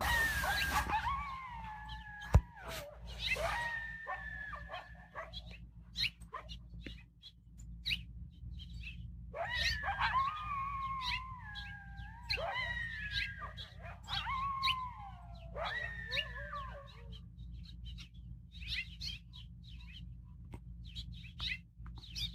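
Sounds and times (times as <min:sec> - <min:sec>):
pair of coyotes howling in long wavering tones: 0:00.0 - 0:06.5, 0:09.3 - 0:19.2
low steady rumble of background noise: 0:00.0 - 0:22.3
coyote short yips and barks: 0:00.1 - 0:05.5, 0:09.4 - 0:17.2.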